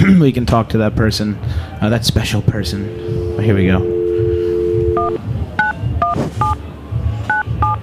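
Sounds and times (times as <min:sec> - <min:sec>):
speech: 0:00.1 - 0:04.0
telephone touch-tone beeps: 0:02.7 - 0:06.6
telephone dial tone: 0:02.8 - 0:05.2.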